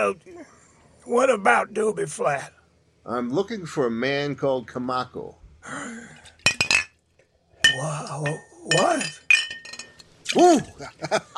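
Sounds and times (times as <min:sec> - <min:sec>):
speech: 0:00.0 - 0:06.4, 0:07.8 - 0:09.2, 0:10.3 - 0:11.3
glass bottle knocked over, clinking: 0:06.4 - 0:07.0, 0:07.6 - 0:10.1
laughter: 0:10.5 - 0:11.3.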